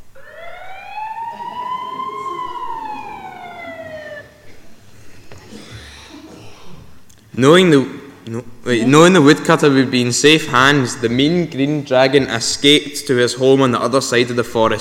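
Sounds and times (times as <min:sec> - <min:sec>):
ambulance siren wailing: 0:00.0 - 0:04.6
speech: 0:07.4 - 0:14.7.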